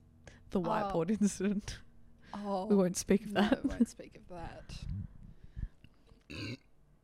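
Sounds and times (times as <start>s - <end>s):
speech: 0.5s - 5.2s, 6.3s - 6.6s
short throaty burp: 6.3s - 6.7s.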